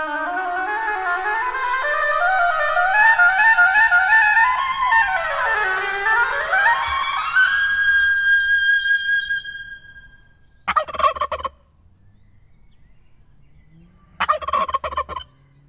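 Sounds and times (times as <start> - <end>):
turkey gobbling: 1.1 - 11.7, 14.0 - 15.4.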